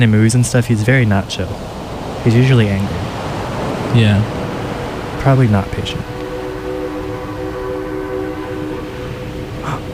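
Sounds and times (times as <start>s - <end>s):
speech: 0.0s - 3.1s, 3.9s - 4.4s, 5.2s - 6.1s
low rumbling drone of a train: 0.8s - 9.9s
train horn: 4.8s - 9.9s.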